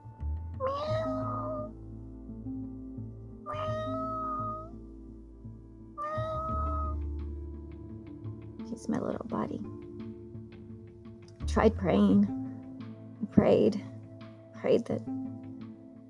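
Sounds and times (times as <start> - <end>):
domestic tabby cat meowing: 0.6 - 1.7, 3.5 - 4.7, 6.0 - 7.0
speech: 8.8 - 9.8, 11.6 - 12.4, 13.3 - 13.9, 14.6 - 15.2.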